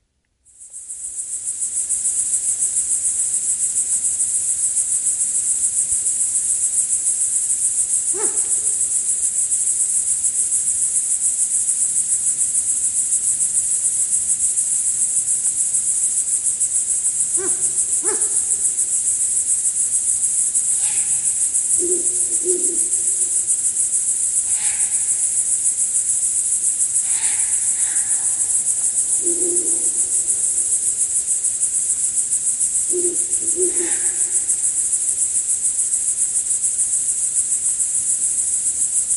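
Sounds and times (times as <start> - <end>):
chorus of crickets chirping on an August evening: 0.2 - 39.1
Ural owl giving barking hoots: 8.1 - 8.8, 17.3 - 18.8, 20.8 - 23.6, 27.0 - 31.0, 32.8 - 34.6.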